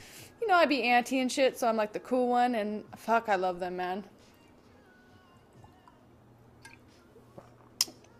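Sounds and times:
faint hum: 0.0s - 8.1s
speech: 0.5s - 4.2s
person sipping sparkling mineral water: 6.6s - 8.1s.

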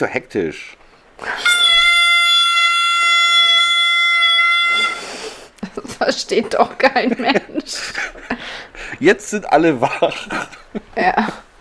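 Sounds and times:
speech: 0.0s - 1.5s, 6.0s - 11.4s
toy horn blast: 1.3s - 5.4s
laughter: 5.6s - 8.5s, 9.8s - 11.4s.

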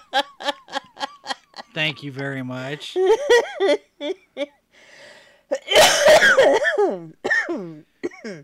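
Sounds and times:
person laughing: 0.0s - 1.7s, 3.0s - 4.5s
speech: 1.8s - 4.5s
person gasping: 4.8s - 5.6s
person coughing after hard laughter: 5.5s - 8.4s.

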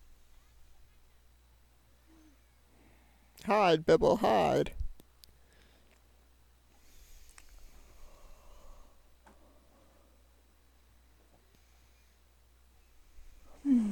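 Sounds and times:
faint hum: 0.0s - 13.9s
speech: 3.4s - 4.8s
loud yawn with voiced downward-sliding groan: 13.5s - 13.9s.

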